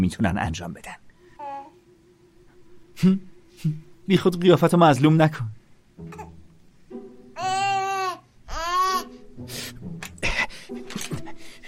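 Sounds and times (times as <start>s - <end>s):
speech: 0.0s - 1.0s, 3.0s - 6.3s
soft fussy baby babbling and whimpering: 1.3s - 1.9s, 6.0s - 6.5s, 7.4s - 9.2s
baby crying in loud wails: 1.4s - 1.8s, 6.0s - 6.4s, 7.4s - 9.2s.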